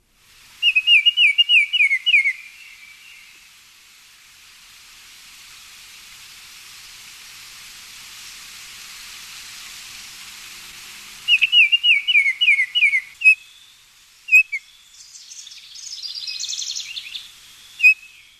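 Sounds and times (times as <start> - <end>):
steady soft hiss of noise: 0.0 - 18.3
Baltimore Oriole singing clear whistled notes: 0.6 - 3.3, 11.3 - 18.3.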